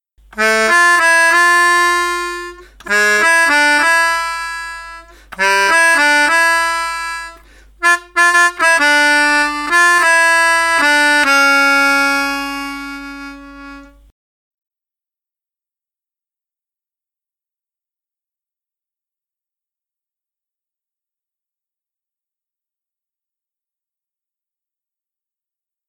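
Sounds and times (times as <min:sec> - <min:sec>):
melodica: 0:00.4 - 0:14.1.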